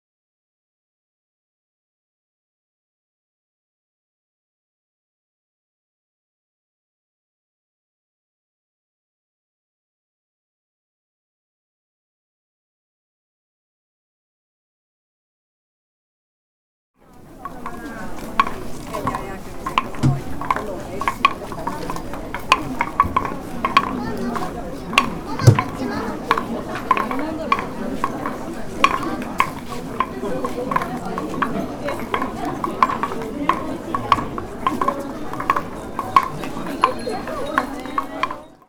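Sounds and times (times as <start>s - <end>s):
wooden clogs in Kyoto: 17.2s - 38.6s.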